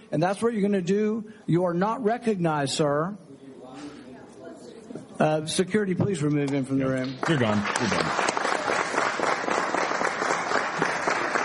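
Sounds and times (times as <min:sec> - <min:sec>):
speech: 0:00.1 - 0:03.2, 0:05.2 - 0:08.2
audience applause: 0:07.0 - 0:11.4.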